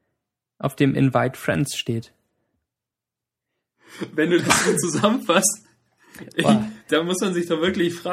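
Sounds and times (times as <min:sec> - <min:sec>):
speech: 0:00.6 - 0:02.2, 0:03.9 - 0:08.1
laughter: 0:04.0 - 0:08.1
sneeze: 0:04.4 - 0:04.8.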